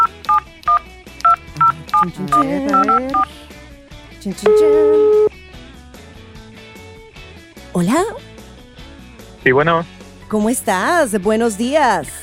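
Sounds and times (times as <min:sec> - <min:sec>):
telephone keypad DTMF tones as a number is dialed: 0:00.0 - 0:00.8
laughter: 0:01.6 - 0:03.4
speech: 0:02.0 - 0:03.4, 0:04.2 - 0:05.3, 0:07.8 - 0:08.3, 0:09.4 - 0:12.2.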